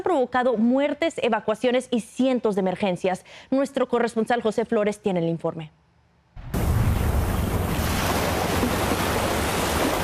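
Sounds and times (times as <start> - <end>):
speech: 0.1 - 5.8
Pacific Ocean surf breaking on the coast of Guatemala during a storm: 6.4 - 10.0.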